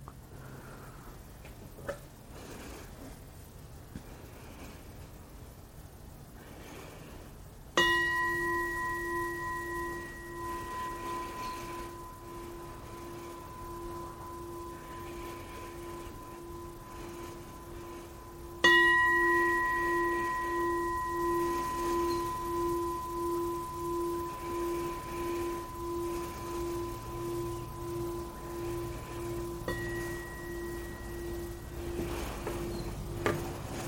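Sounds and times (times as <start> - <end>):
meditation bell struck: 7.8 - 33.8.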